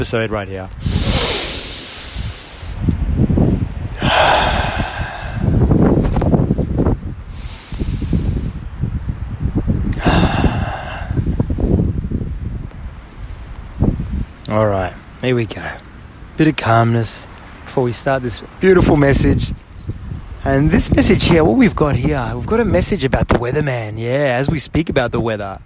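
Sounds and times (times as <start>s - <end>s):
speech: 0.0s - 0.9s, 15.3s - 15.8s, 16.4s - 19.6s, 20.4s - 25.6s
low rumbling wind buffeting the microphone: 0.0s - 15.2s, 17.6s - 25.6s
deep breaths taken outdoors in the wind: 0.8s - 2.9s, 3.9s - 6.1s, 7.2s - 8.7s, 9.9s - 11.6s.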